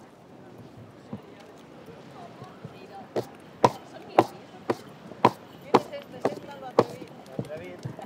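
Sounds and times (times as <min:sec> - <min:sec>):
busy crowd murmur and voices: 0:00.0 - 0:08.0
horse hooves clip-clopping on hard ground in a festival procession: 0:02.4 - 0:08.0.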